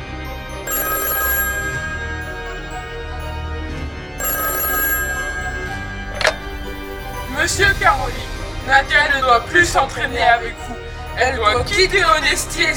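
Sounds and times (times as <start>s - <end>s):
telephone ringing: 0.6s - 7.8s
speech: 7.4s - 12.7s.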